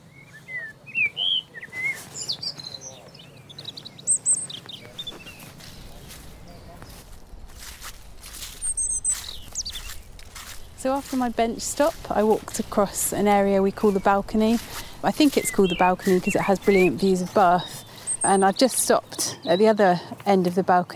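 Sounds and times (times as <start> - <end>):
birds chirping and warbling along a tree-lined path: 0.0 - 20.7
soft outdoor hum: 0.0 - 20.9
faint rustling: 3.6 - 19.3
speech: 10.8 - 20.9.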